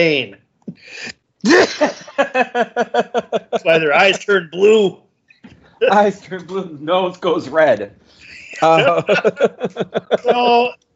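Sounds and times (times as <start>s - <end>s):
speech: 0.0s - 5.0s, 5.8s - 10.8s
person sneezing: 0.8s - 2.1s
laughter: 1.5s - 4.9s, 5.8s - 10.8s.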